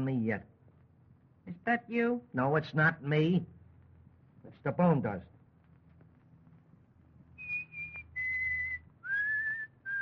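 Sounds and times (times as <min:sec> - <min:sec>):
speech: 0:00.0 - 0:00.6, 0:01.5 - 0:03.6, 0:04.4 - 0:05.4
faint low hum: 0:00.0 - 0:10.0
person whistling a tune: 0:07.4 - 0:10.0.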